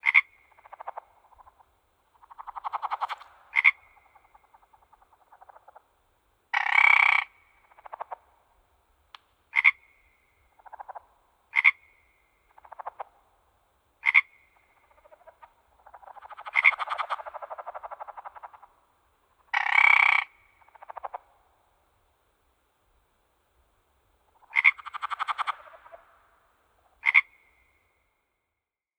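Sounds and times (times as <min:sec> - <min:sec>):
frog calling: 0:00.0 - 0:05.9, 0:06.5 - 0:08.3, 0:09.5 - 0:13.2, 0:14.0 - 0:21.3, 0:24.4 - 0:28.1.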